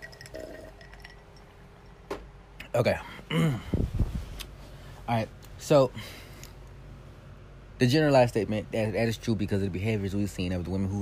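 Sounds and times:
glass clinking: 0.0 - 2.0
water sloshing in a glass while drinking: 0.0 - 2.0
speech: 2.8 - 3.9, 5.1 - 6.2, 7.8 - 10.9.

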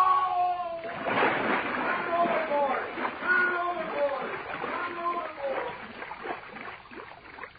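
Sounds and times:
frantic voice shouting for help: 0.0 - 0.9, 2.0 - 5.6
heavy splash of a man falling overboard into water: 0.0 - 7.5.

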